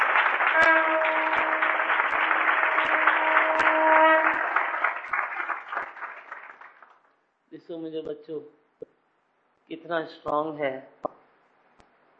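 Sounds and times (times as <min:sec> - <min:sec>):
crowd applauding: 0:00.0 - 0:07.1
speech: 0:07.8 - 0:08.6, 0:09.7 - 0:11.0.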